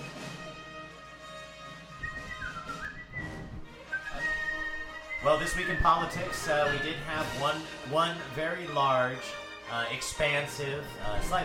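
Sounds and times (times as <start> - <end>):
steady musical background: 0.0 - 11.4
person whistling a short wavering tune: 1.9 - 7.6
speech: 5.2 - 11.4.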